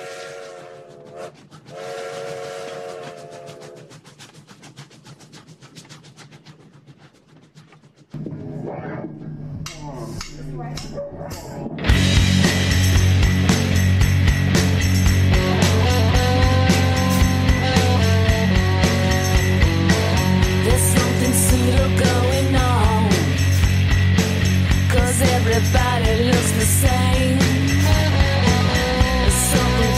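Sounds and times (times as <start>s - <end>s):
rock song with driving drums and distorted guitars: 11.8s - 29.9s.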